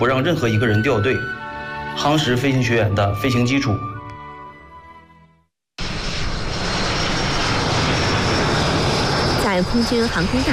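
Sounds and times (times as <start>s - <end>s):
speech: 0.0s - 1.4s, 2.0s - 3.9s, 9.6s - 10.5s
military jet trainer engines roaring on takeoff: 5.8s - 10.5s.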